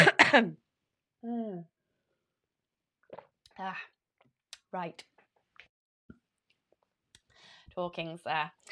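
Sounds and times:
harsh cough: 0.0 - 0.6
speech: 0.3 - 0.6, 1.2 - 1.7, 3.6 - 3.9, 4.7 - 5.1, 7.8 - 8.7.

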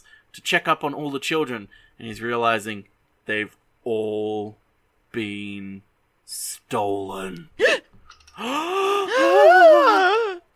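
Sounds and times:
speech: 0.3 - 7.8, 8.4 - 10.2
dramatic gasp: 8.4 - 9.5.

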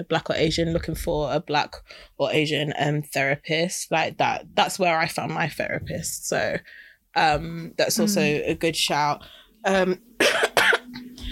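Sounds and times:
speech: 0.0 - 10.6
voiced throat sound: 8.0 - 8.4
harsh coughs: 10.2 - 11.0.

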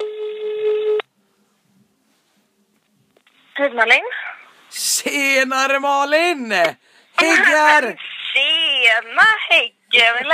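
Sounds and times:
telephone tone as a call is placed: 0.0 - 1.1
speech: 3.6 - 10.3.

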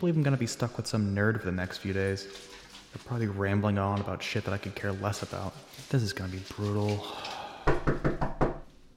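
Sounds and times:
speech: 0.0 - 8.4
firm knocking on a door: 7.7 - 8.7.

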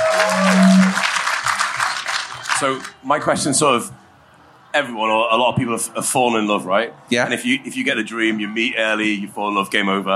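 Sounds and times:
audience applause welcoming an audience member: 0.0 - 3.0
brief tonal note: 0.4 - 1.0
speech: 2.6 - 4.0, 4.7 - 10.1.

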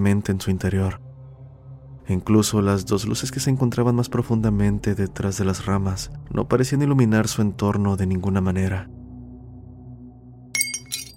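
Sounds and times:
speech: 0.0 - 1.0, 2.1 - 9.0
whisky glass slipping and shattering on the floor: 10.6 - 11.1.

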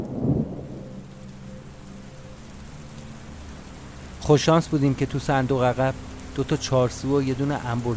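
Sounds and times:
deep low rumble: 0.0 - 1.8
heavy rain pouring: 0.0 - 7.9
speech: 4.3 - 7.9.

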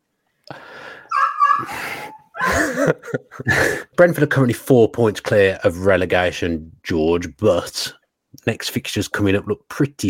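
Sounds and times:
dog whimpering and yipping: 1.1 - 2.6
laughter: 1.7 - 3.8
speech: 2.8 - 10.0.

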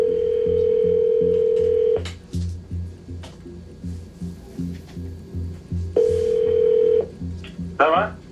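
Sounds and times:
outgoing phone call ringback tone: 0.0 - 2.0, 6.0 - 7.1
quiet rhythmic thumping: 0.0 - 8.3.

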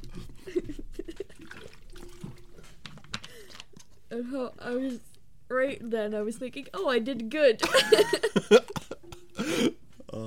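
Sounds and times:
sipping and slurping water: 1.1 - 2.8
speech: 4.1 - 8.8
laughter: 7.6 - 9.7.

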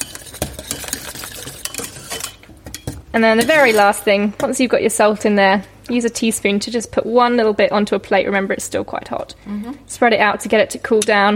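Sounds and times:
metal whisk scraping and tapping a pan, working salt flakes into a hot mixture: 0.0 - 2.8
speech: 3.1 - 11.3.

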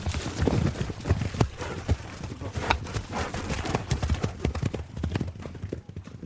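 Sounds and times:
restless horse hooves clip-clopping: 0.0 - 6.2.

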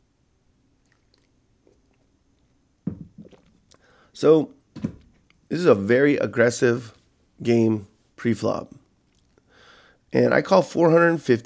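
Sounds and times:
soft wet gulping: 0.7 - 4.2, 9.0 - 9.5
sipping coffee: 0.8 - 4.2
speech: 4.2 - 4.6, 5.5 - 8.8, 10.1 - 11.4.

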